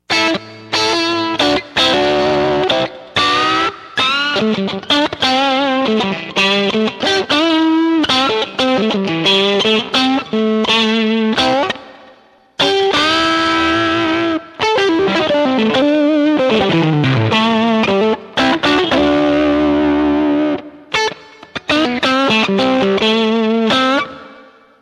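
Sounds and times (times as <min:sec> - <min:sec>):
guitar through overdrive pedal: 0:00.0 - 0:24.8.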